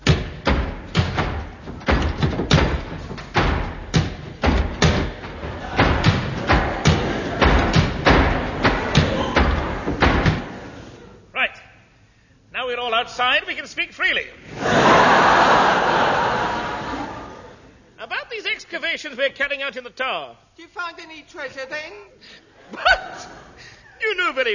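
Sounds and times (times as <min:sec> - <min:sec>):
heavy wooden doors slamming shut: 0:00.0 - 0:10.8
laughter: 0:05.4 - 0:11.2, 0:14.5 - 0:17.7, 0:22.6 - 0:24.0
speech: 0:13.0 - 0:14.9, 0:18.7 - 0:23.4, 0:24.0 - 0:24.5.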